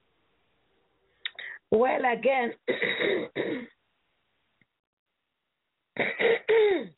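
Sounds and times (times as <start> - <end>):
speech: 1.7 - 3.7, 6.0 - 6.9
person clearing throat: 2.7 - 3.8, 6.0 - 6.9.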